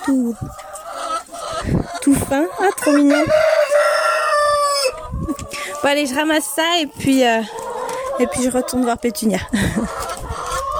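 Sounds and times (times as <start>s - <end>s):
speech: 0.1s - 0.7s, 1.6s - 3.5s, 5.3s - 7.6s, 8.2s - 10.0s
rooster crowing in the evening at a henhouse: 3.2s - 4.9s
laughter: 9.5s - 10.1s.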